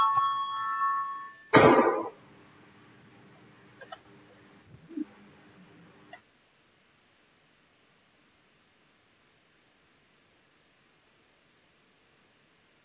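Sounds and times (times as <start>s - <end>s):
parliamentary electronic voting bell ringing: 0.0s - 1.6s.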